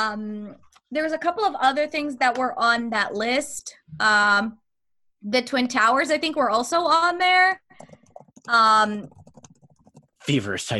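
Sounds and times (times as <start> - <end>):
speech: 0.0 - 4.6, 5.2 - 9.2, 10.2 - 10.7
quick light typing on a computer keyboard: 7.7 - 10.3.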